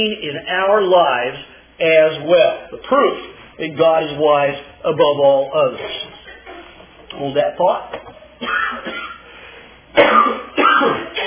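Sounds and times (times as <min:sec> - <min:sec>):
speech: 0:00.0 - 0:06.2, 0:07.1 - 0:09.1, 0:10.0 - 0:11.0
person clearing throat: 0:08.4 - 0:09.2, 0:09.9 - 0:11.2
person coughing: 0:08.4 - 0:09.3, 0:09.9 - 0:11.2.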